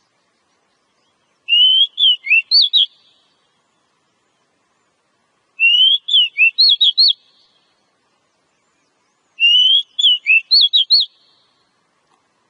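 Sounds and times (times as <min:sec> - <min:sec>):
Oriental magpie-robin singing as a lure call: 0:00.0 - 0:04.0, 0:05.6 - 0:07.8, 0:08.6 - 0:11.7.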